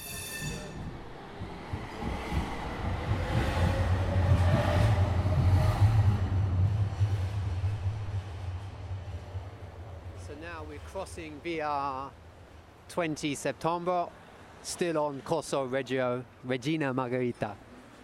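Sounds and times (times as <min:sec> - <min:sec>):
metallic squealing of a city tram: 0:00.0 - 0:00.9
moving city tram wheels rumbling on rails: 0:00.0 - 0:13.2
speech: 0:10.8 - 0:12.2, 0:12.9 - 0:17.6.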